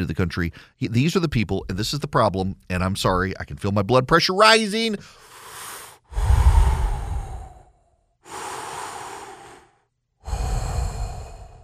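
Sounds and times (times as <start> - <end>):
speech: 0.0 - 5.3
person breathing deliberately to calm down: 5.0 - 11.6.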